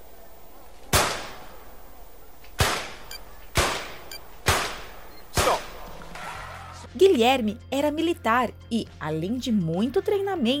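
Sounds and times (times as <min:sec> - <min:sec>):
pistol shots at target shooting: 0:00.9 - 0:01.4, 0:02.6 - 0:05.8
speech: 0:07.0 - 0:10.5.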